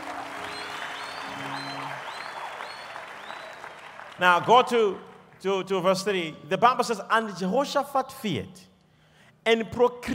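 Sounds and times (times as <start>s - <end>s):
audience clapping hands: 0.0s - 5.5s
speech: 4.2s - 8.7s, 9.4s - 10.1s.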